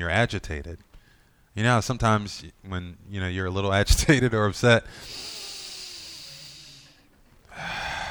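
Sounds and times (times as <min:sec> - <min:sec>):
speech: 0:00.0 - 0:00.9, 0:01.6 - 0:05.4
deep calming breath drawn slowly in through the nose: 0:04.9 - 0:08.0.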